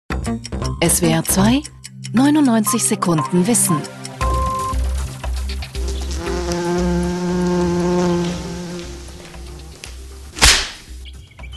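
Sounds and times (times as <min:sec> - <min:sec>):
speech: 0:00.2 - 0:04.0
wasp buzzing: 0:04.8 - 0:11.0
sharp whip-like swish: 0:10.4 - 0:10.9.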